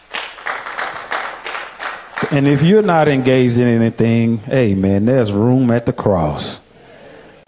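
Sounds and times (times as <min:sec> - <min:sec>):
crowd clapping hands: 0:00.0 - 0:03.6
speech: 0:02.2 - 0:06.6.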